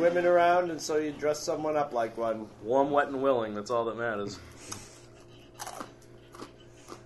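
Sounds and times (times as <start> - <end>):
speech: 0.0 - 4.9
low steady hum: 0.0 - 7.0
person biting into a pretzel: 5.6 - 7.0.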